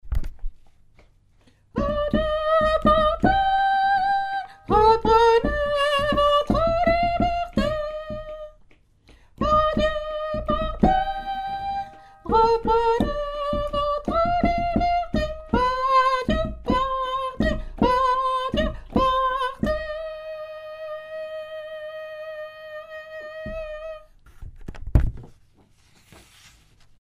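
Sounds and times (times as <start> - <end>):
soprano singing: 1.8 - 8.6, 9.4 - 24.1.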